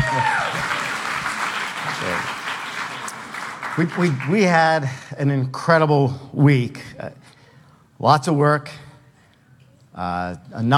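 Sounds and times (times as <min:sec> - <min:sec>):
large group applauding: 0:00.0 - 0:04.9
speech: 0:03.8 - 0:07.3, 0:08.0 - 0:08.8, 0:10.0 - 0:10.7.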